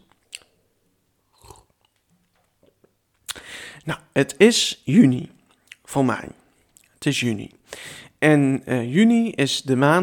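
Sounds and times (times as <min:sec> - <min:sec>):
person sipping a drink and swallowing: 0:01.3 - 0:02.0
speech: 0:03.8 - 0:05.4, 0:06.0 - 0:06.4, 0:07.0 - 0:10.0.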